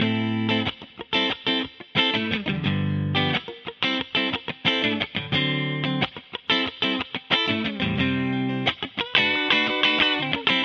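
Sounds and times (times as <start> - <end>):
guitar processed with cepstrum modification: 0.0 - 10.6.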